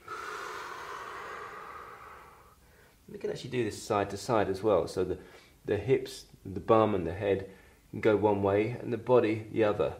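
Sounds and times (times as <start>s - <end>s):
person breathing during a stretching exercise: 0.0s - 3.1s, 5.2s - 5.6s, 7.5s - 7.9s
speech: 3.1s - 9.9s.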